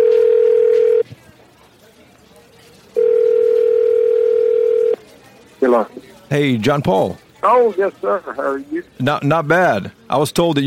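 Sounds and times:
electronic telephone ring tones on an outgoing call: 0.0s - 1.0s, 3.0s - 5.0s
faint noise: 0.0s - 10.6s
speech: 6.3s - 10.6s.

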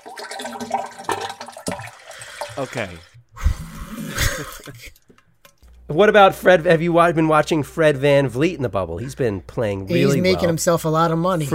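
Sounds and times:
toilet flushing: 0.0s - 4.5s
speech: 2.6s - 3.1s, 4.4s - 5.0s, 5.9s - 11.5s.

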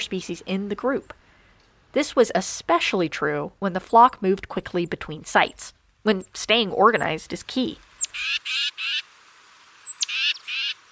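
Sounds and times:
speech: 0.0s - 1.2s, 1.9s - 8.9s
titmouse harsh raspy scolding calls: 8.0s - 9.0s, 9.8s - 10.8s.

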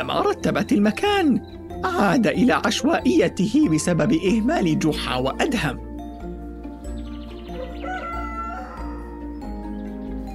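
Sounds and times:
speech: 0.0s - 5.8s
rooster crowing cock-a-doodle-doo: 7.5s - 9.3s.

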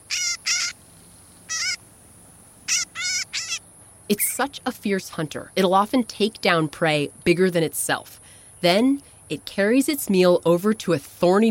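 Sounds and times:
northern shrike giving harsh nasal buzzy calls: 0.0s - 0.8s, 1.4s - 1.8s, 2.7s - 5.1s
speech: 4.1s - 11.4s.

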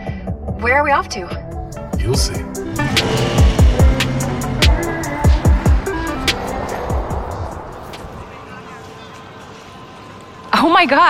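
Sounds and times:
speech: 0.6s - 3.4s, 10.6s - 11.0s
Lamborghini sports car engine rumble while driving: 1.7s - 8.4s
deep thudding pulses falling in pitch: 2.1s - 8.3s.

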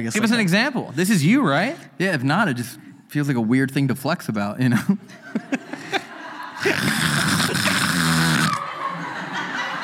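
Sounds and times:
speech: 0.0s - 5.6s
laughter: 4.7s - 9.8s
breathy sounds: 5.8s - 8.6s
voice imitating a demonic snore with a harsh growling rasp: 6.6s - 8.6s.

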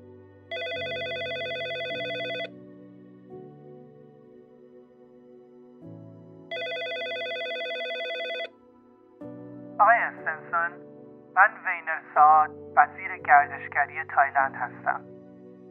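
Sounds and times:
soft music bed: 0.0s - 15.7s
telephone ringing with electronic tone: 0.5s - 2.5s, 6.5s - 8.5s.

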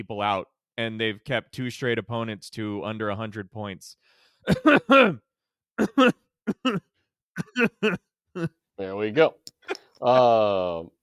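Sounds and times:
speech: 0.0s - 11.0s
person clearing throat: 4.5s - 5.2s, 5.8s - 8.6s
person coughing: 4.5s - 5.2s, 5.8s - 8.5s.

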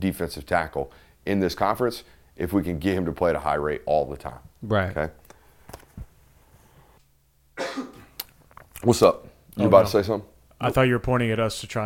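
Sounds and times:
speech: 0.0s - 5.2s, 8.8s - 11.8s
person coughing: 7.6s - 8.1s.

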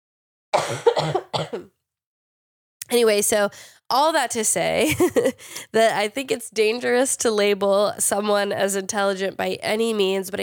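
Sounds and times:
harsh coughing with throat clearing: 0.6s - 1.7s
speech: 0.7s - 1.8s, 2.9s - 10.4s.

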